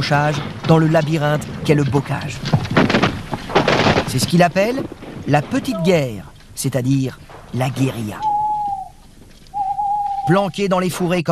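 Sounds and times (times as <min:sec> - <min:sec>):
speech: 0:00.0 - 0:02.6, 0:04.1 - 0:08.3, 0:10.3 - 0:11.3
faint hum: 0:00.0 - 0:11.3
owl hooting: 0:05.6 - 0:06.2, 0:07.9 - 0:10.6.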